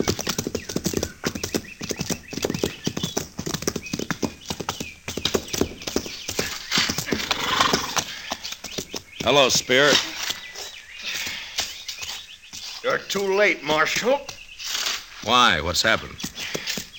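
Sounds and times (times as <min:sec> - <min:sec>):
many horses' hooves clip-clopping near a fort: 0:00.0 - 0:16.9
horse whinnying: 0:06.7 - 0:08.2
speech: 0:09.2 - 0:10.1, 0:12.9 - 0:14.3, 0:15.2 - 0:16.2.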